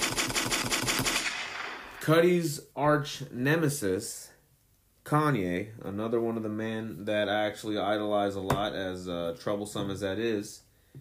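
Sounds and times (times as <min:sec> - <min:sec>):
automatic gunfire: 0:00.0 - 0:02.0
speech: 0:02.1 - 0:04.3, 0:05.1 - 0:10.6.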